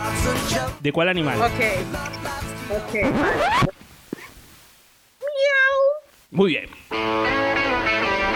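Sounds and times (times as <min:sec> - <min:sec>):
speech: 0:00.2 - 0:03.7, 0:06.3 - 0:07.4
person imitating a cat's meow in an animal-sound game: 0:05.2 - 0:06.0.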